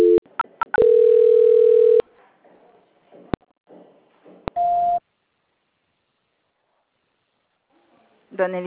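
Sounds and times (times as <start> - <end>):
steady telephone line tone during a call transfer: 0.8 - 2.0.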